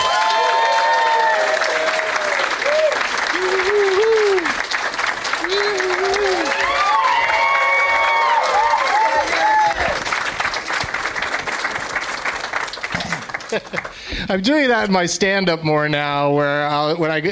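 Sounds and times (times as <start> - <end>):
excited whoops and cheers from a studio audience: 0.0 - 4.6, 5.4 - 10.0
studio audience clapping: 0.0 - 14.8
speech: 14.3 - 17.2.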